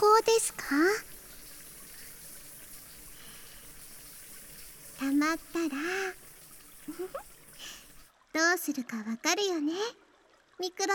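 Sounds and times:
hot shower water pouring into a small bath bucket: 0:00.0 - 0:08.1
speech: 0:00.2 - 0:01.1, 0:08.6 - 0:10.0, 0:10.6 - 0:10.9.

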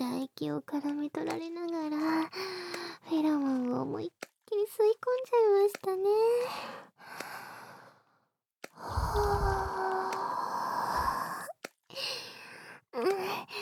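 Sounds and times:
speech: 0:00.4 - 0:07.4
warm breathy exhales blown into the microphone: 0:08.8 - 0:11.4.

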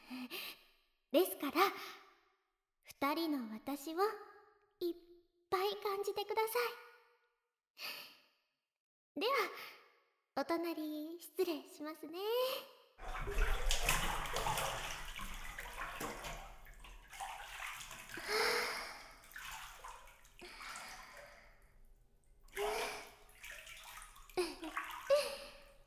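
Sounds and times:
speech: 0:01.1 - 0:01.9, 0:03.0 - 0:05.1, 0:06.0 - 0:06.9, 0:09.2 - 0:09.8, 0:10.4 - 0:13.6
hot spring water pouring and splashing into a bath: 0:13.0 - 0:25.8.

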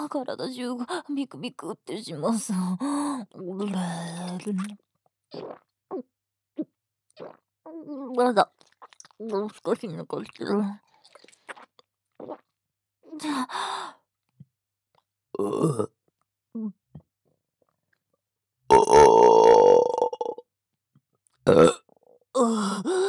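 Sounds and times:
speech: 0:00.1 - 0:10.9, 0:12.2 - 0:12.5, 0:13.1 - 0:14.0, 0:15.4 - 0:16.8, 0:18.7 - 0:19.9, 0:21.5 - 0:21.8, 0:22.4 - 0:23.0
person burping: 0:15.4 - 0:15.9, 0:18.7 - 0:20.4, 0:21.5 - 0:23.0.

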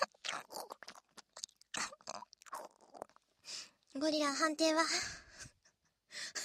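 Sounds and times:
food being chewed with crunchy bites: 0:00.1 - 0:03.3
speech: 0:03.9 - 0:05.2.

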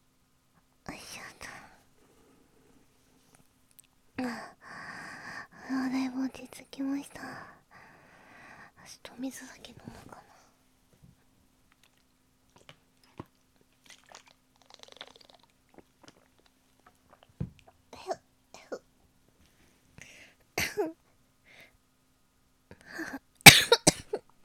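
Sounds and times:
soft breathy noises: 0:00.9 - 0:03.5, 0:04.2 - 0:06.4, 0:07.0 - 0:10.6, 0:19.4 - 0:20.4, 0:21.4 - 0:21.8
speech: 0:08.9 - 0:10.2
crunchy mouth sounds: 0:11.7 - 0:17.8
person with a very dry throat coughing: 0:20.6 - 0:21.0, 0:23.5 - 0:24.2.

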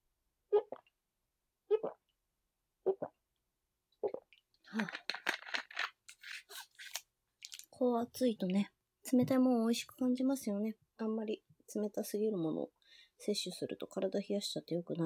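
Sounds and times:
swallowing gulps of cold sparkling water: 0:00.6 - 0:00.9, 0:01.7 - 0:02.1, 0:02.8 - 0:03.2, 0:04.0 - 0:05.0
speech: 0:04.7 - 0:05.2, 0:07.8 - 0:15.0.

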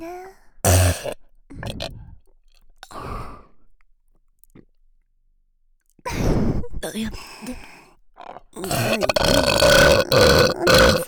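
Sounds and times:
speech: 0:00.9 - 0:01.2
long gravelly burp: 0:08.2 - 0:11.0.

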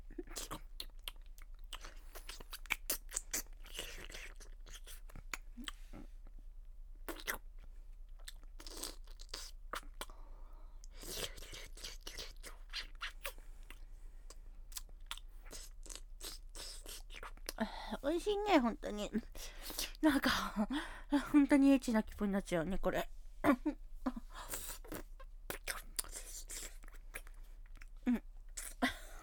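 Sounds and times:
wet licking and mouth sounds on a silicone toy: 0:00.1 - 0:05.9, 0:07.1 - 0:07.5, 0:08.2 - 0:10.1, 0:10.9 - 0:17.6, 0:24.1 - 0:28.9
speech: 0:18.1 - 0:19.5, 0:20.0 - 0:23.9.

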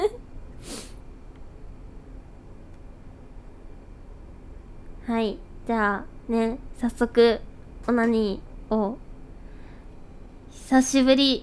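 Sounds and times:
sniffle from a runny nose in the cold: 0:00.6 - 0:01.0
speech: 0:05.1 - 0:09.0, 0:10.6 - 0:11.4.

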